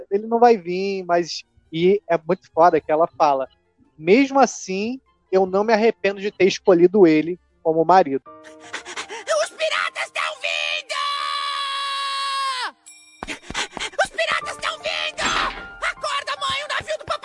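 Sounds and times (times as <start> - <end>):
speech: 0.1 - 8.9
boy screaming loudly: 9.2 - 12.8, 14.0 - 17.2.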